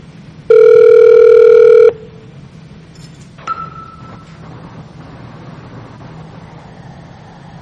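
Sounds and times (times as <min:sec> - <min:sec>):
electronic ringing tone of an outgoing VoIP call: 0:00.5 - 0:02.1.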